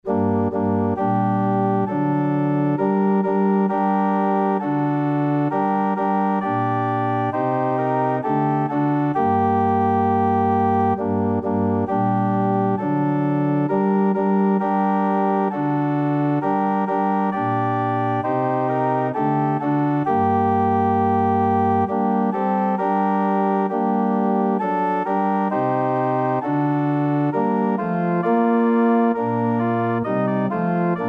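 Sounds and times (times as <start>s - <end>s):
organ music: 0.0s - 31.0s.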